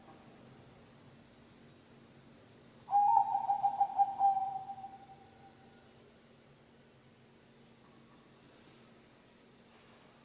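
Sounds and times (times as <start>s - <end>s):
Bangkok-type zebra dove cooing song: 2.9s - 5.0s.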